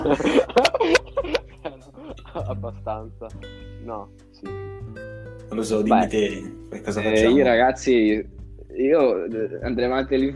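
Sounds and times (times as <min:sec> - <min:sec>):
speech: 0:00.0 - 0:00.6, 0:02.5 - 0:10.3
rough coughing: 0:00.0 - 0:02.9
laughter: 0:00.0 - 0:03.3.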